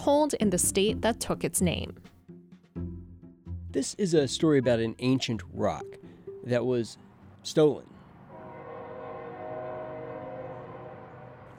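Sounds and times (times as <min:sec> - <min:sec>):
speech: 0:00.0 - 0:02.1, 0:03.7 - 0:07.9
train rumbling past on a railroad line beside a park in Lawrence: 0:08.1 - 0:11.5
sustained droning tones: 0:08.3 - 0:11.5.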